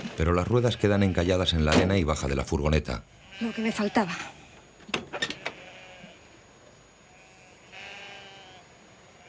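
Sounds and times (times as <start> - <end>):
speech: 0.2 - 4.4
goats bleating at shacks: 0.4 - 1.3, 3.2 - 4.4, 5.3 - 6.2, 7.1 - 9.2.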